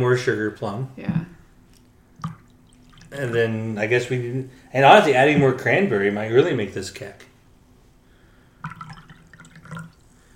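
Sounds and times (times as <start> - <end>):
speech: 0.0 - 1.2, 3.1 - 7.3
water being poured near the microphone: 1.8 - 3.6, 8.6 - 10.2.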